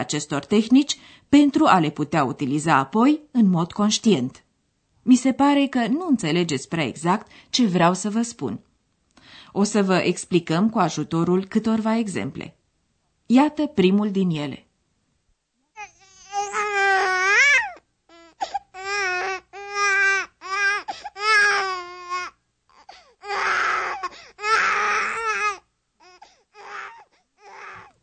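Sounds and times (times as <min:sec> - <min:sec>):
speech: 0:00.0 - 0:04.4, 0:05.0 - 0:08.7, 0:09.3 - 0:12.6, 0:13.3 - 0:14.6
small child crying and whimpering: 0:15.8 - 0:27.9.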